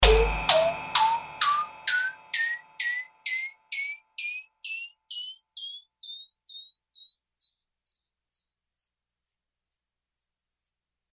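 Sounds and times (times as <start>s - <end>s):
snare drum: 0.0s - 3.9s.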